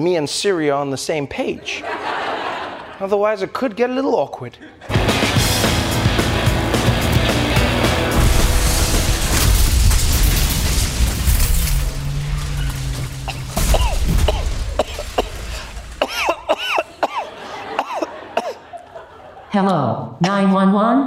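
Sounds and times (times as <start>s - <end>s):
speech: 0.0s - 2.2s, 3.0s - 5.1s, 19.6s - 21.0s
laughter: 1.5s - 3.4s, 4.4s - 5.4s, 15.5s - 19.7s
car crash with engine roar and grinding impact: 5.0s - 16.5s
clattering car crash debris: 7.0s - 16.6s.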